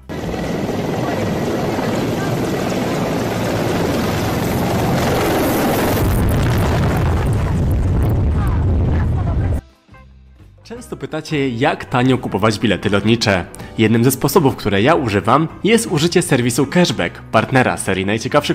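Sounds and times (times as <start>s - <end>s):
military helicopters flying overhead: 0.0s - 9.6s
speech: 11.0s - 18.5s.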